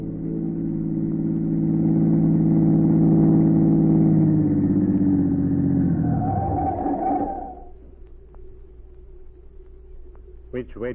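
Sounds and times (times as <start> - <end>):
car engine humming as the car pulls up to the curb: 0.0 - 8.0.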